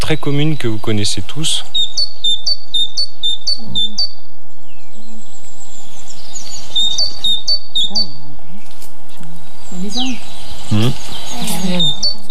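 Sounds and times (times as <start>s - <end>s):
voices murmuring: 0.0s - 1.9s, 7.0s - 8.4s, 9.2s - 12.2s
great tit singing: 0.0s - 8.8s, 9.4s - 12.2s
faint bird chirps: 0.0s - 12.2s
speech: 0.1s - 2.0s, 9.7s - 12.2s.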